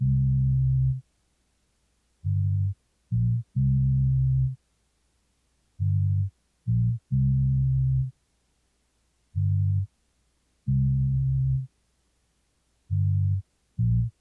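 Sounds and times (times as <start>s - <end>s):
C minor bass melody loop at 135 BPM: 0.0s - 1.0s, 2.3s - 4.6s, 5.8s - 8.1s, 9.4s - 9.9s, 10.7s - 11.7s, 12.9s - 14.2s.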